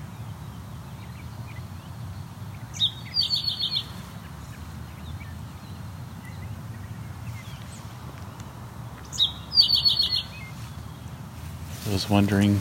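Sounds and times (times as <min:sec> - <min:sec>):
great crested flycatcher calling: 0:02.5 - 0:12.5
speech: 0:11.9 - 0:12.5.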